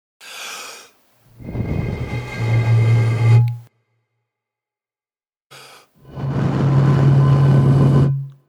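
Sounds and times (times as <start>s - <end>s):
person blowing air into a glass wine bottle creating a musical note: 1.4s - 3.7s, 5.7s - 8.4s.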